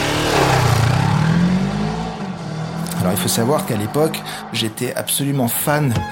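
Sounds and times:
motorcycle engine revving: 0.0 - 4.6
speech: 3.0 - 6.0.

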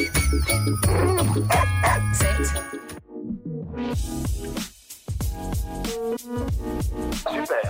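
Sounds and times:
bright chiming bell tones: 0.0 - 2.9
festive jingly Christmas-style tune composed for dogs: 0.0 - 3.0
speech: 0.0 - 3.0, 3.8 - 4.7, 5.4 - 7.6.

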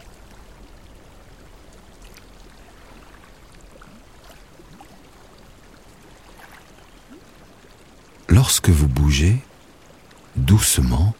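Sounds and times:
faint drips and splashes of spring water: 0.0 - 8.3
trickling hot spring water: 0.0 - 11.1
speech: 8.3 - 9.5, 10.4 - 11.1.

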